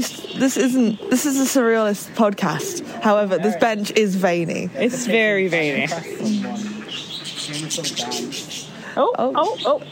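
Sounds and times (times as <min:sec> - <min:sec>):
speech: 0:00.0 - 0:06.4, 0:07.7 - 0:09.9
cockatiels chirping: 0:05.6 - 0:09.8.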